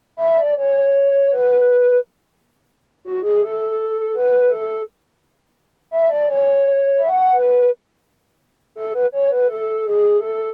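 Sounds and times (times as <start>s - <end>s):
flute melody loop in F sharp minor: 0.1s - 2.1s, 3.0s - 5.0s, 5.9s - 7.8s, 8.8s - 10.5s.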